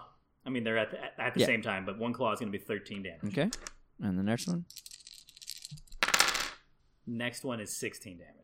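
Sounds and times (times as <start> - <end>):
speech: 0.5 - 4.9, 7.1 - 8.4
dice rattling across a table in a tabletop game: 3.5 - 3.8, 4.7 - 6.6.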